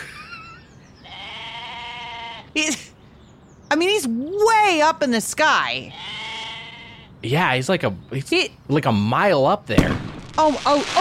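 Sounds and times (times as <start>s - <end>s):
goat bleating: 1.0s - 2.6s, 5.8s - 7.2s
speech: 2.6s - 2.9s, 3.7s - 6.1s, 7.2s - 10.9s.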